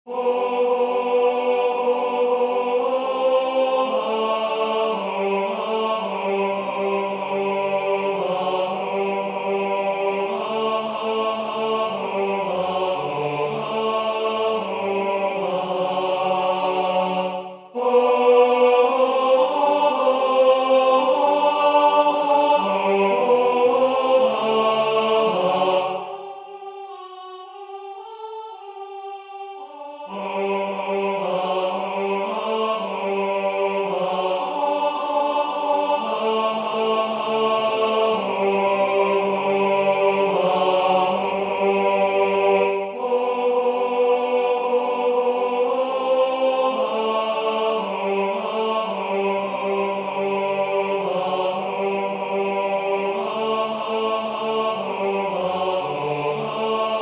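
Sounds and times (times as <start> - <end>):
tenor singing a Christmas carol: 0.0 - 57.0.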